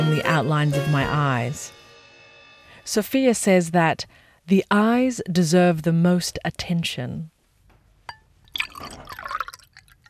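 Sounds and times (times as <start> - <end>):
speech: 0.0 - 1.8, 2.9 - 7.3
short clink: 8.1 - 9.6
Chianti wine pouring into a glass in a kitchen: 8.5 - 10.0.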